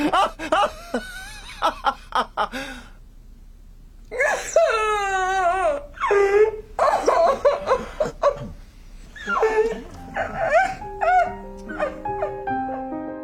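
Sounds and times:
laughter: 0.0 - 2.7
dog whimpering and whining in high wavering cries: 4.2 - 13.0.

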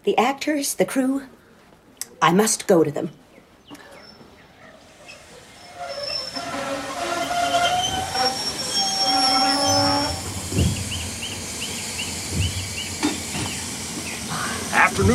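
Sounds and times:
speech: 0.0 - 1.4, 2.2 - 3.2
train rolling on rails with a low rumble: 4.9 - 15.1
high metallic train wheel squeals: 5.0 - 13.0.

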